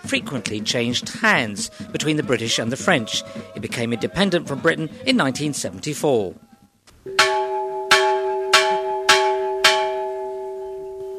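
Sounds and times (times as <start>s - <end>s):
speech: 0.0s - 6.5s
large plantation bell over three hundred years old clanging: 7.1s - 11.1s.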